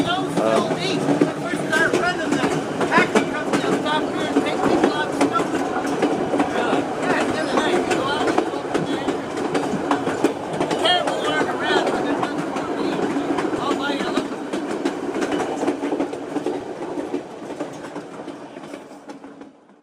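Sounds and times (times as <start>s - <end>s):
people talking inside a train carriage: 0.0s - 9.5s, 10.6s - 14.4s
passenger train rumbling and rattling along rails heard from inside a carriage: 0.0s - 19.8s.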